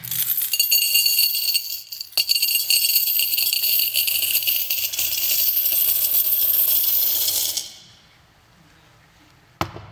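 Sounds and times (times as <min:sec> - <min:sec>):
cascade of coins pouring and clinking: 0:00.0 - 0:07.8.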